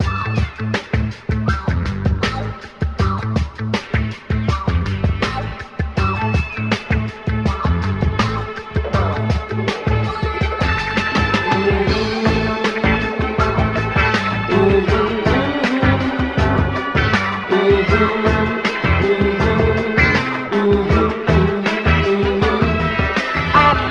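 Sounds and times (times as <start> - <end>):
bass in loops: 0.0 - 23.9
strings in loops: 2.5 - 23.9
full voice in loops: 8.8 - 16.7, 17.4 - 23.9.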